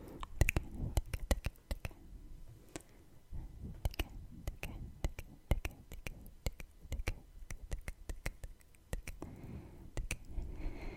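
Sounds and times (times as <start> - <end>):
wet mouth sounds: 0.1 - 2.0, 3.7 - 9.3, 10.0 - 10.5
kissing sounds: 0.2 - 2.0, 3.8 - 9.3, 10.0 - 10.3
sharp tongue clicks: 0.2 - 2.0, 3.8 - 9.3, 10.0 - 10.4
breathing: 9.2 - 10.9.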